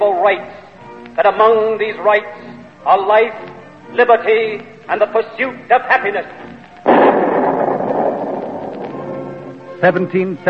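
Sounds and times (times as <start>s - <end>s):
speech: 0.0s - 0.6s, 1.2s - 6.5s, 9.8s - 10.4s
cannon boom with rumbling echo: 6.8s - 9.5s.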